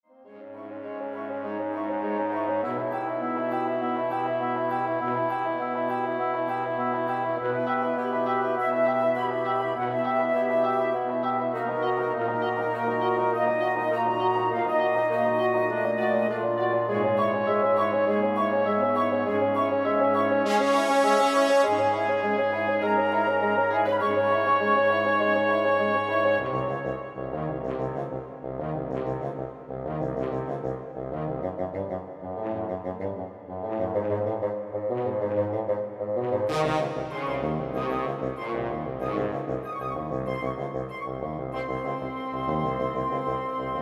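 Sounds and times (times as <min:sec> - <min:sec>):
woodwind quintet playing: 0:00.3 - 0:43.7.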